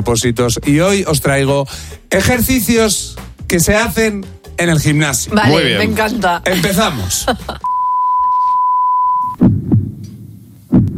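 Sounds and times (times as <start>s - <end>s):
speech: 0.0s - 7.7s
laughter: 5.3s - 7.7s
loud steady electronic beep: 7.6s - 9.4s
deep heartbeat thumps: 9.4s - 10.0s, 10.7s - 10.9s.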